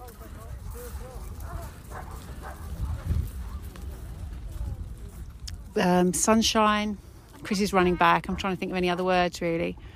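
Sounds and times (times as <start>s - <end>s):
footsteps crunching on sand at the seaside: 0.0s - 7.4s
dog barking: 0.7s - 3.6s
speech: 5.8s - 9.9s.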